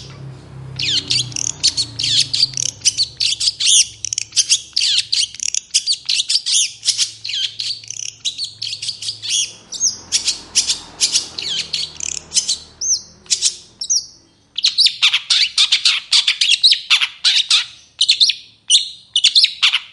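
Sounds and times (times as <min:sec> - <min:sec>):
long-tailed shrike singing with high sharp chirps and buzzy trills: 0:00.8 - 0:19.6.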